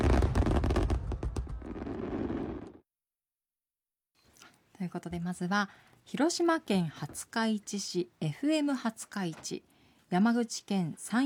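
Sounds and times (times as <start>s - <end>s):
fireworks bursting: 0.0s - 2.8s
speech: 4.8s - 11.2s.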